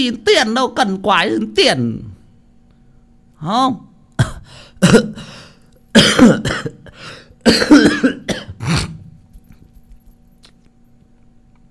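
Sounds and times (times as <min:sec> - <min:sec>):
speech: 0:00.0 - 0:02.1, 0:03.4 - 0:03.9, 0:04.8 - 0:05.4, 0:06.0 - 0:08.9
man clearing throat: 0:04.2 - 0:05.3, 0:05.9 - 0:09.2
man coughing in a fit blamed on cold air conditioning: 0:04.2 - 0:09.2.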